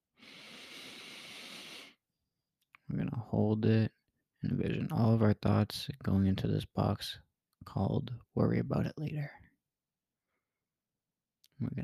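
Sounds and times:
slow deep breath drawn in during a guided relaxation exercise: 0.2s - 2.0s
speech: 2.9s - 9.4s, 11.6s - 11.8s.

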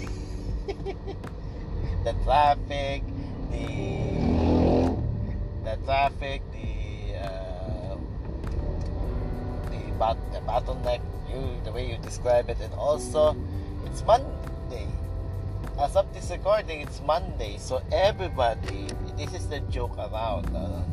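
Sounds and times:
vehicle revving and passing: 0.0s - 10.1s
steady low rumble of road traffic engines: 0.0s - 20.9s
speech: 2.0s - 4.2s, 5.7s - 7.4s, 10.0s - 15.0s, 15.7s - 20.9s.

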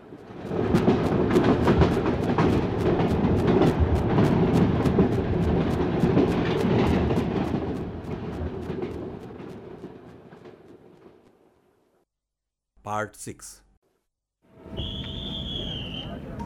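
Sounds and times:
train pulling into the station at Rahim Yar Khan with wheels clattering over rail joints: 0.1s - 11.4s
speech: 12.9s - 13.6s.

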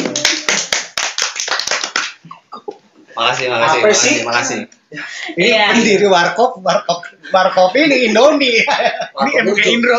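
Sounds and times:
crowd applauding: 0.0s - 2.2s
speech: 3.2s - 9.9s.

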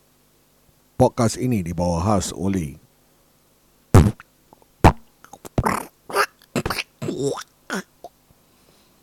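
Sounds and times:
speech: 1.0s - 2.8s
loud sputtering and wet fart sounds: 4.0s - 7.9s.

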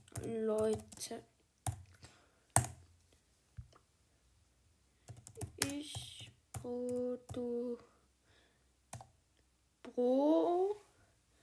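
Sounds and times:
keyboard keystrokes typing out a post: 0.0s - 2.0s, 2.6s - 2.8s, 5.1s - 7.5s
speech: 0.3s - 1.3s, 6.6s - 7.9s.

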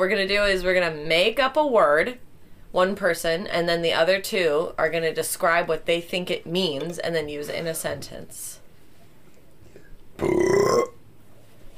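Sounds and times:
speech: 0.0s - 8.6s, 10.2s - 10.9s
person burping: 9.8s - 11.0s.

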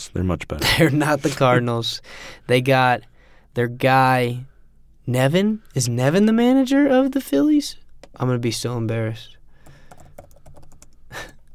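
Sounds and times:
speech: 0.0s - 4.5s, 5.1s - 9.4s
computer keyboard typing with plastic key clicks: 9.6s - 11.5s.

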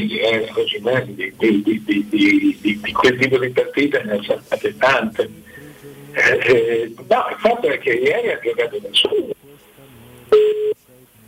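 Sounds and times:
speech: 0.0s - 9.4s
faint voices murmuring: 0.0s - 11.2s
dropped phone call electronic telephone tone: 6.2s - 7.0s, 10.3s - 10.8s.

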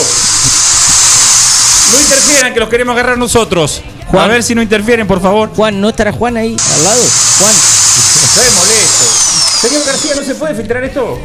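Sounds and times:
power drill running in a neighboring room: 0.0s - 2.4s, 6.6s - 10.4s
speech: 1.9s - 11.2s.

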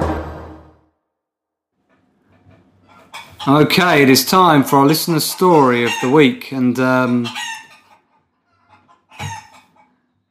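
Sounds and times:
chickens clucking in a flock: 2.2s - 10.3s
speech: 3.4s - 7.5s.

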